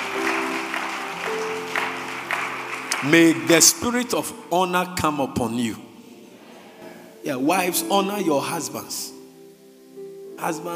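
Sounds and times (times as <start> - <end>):
audience clapping during a sermon: 0.0 - 4.3
speech: 3.0 - 5.9, 7.2 - 9.2, 10.4 - 10.7.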